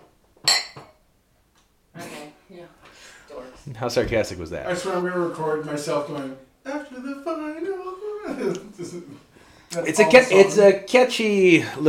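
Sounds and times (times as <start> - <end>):
glasses clinking together in a toast: 0.4 - 1.0
speech: 2.5 - 11.8
laughter: 7.0 - 9.3.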